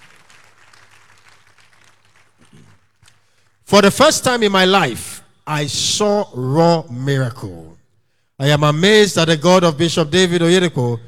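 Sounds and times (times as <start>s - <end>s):
audience clapping: 0.0s - 3.6s
speech: 3.7s - 7.8s, 8.4s - 11.0s.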